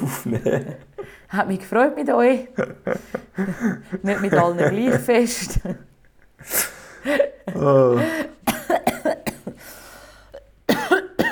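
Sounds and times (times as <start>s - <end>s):
laughter: 0.0s - 1.2s, 2.3s - 8.5s
speech: 0.2s - 8.3s
man coughing harshly after swallowing air: 7.6s - 9.7s, 10.7s - 11.3s.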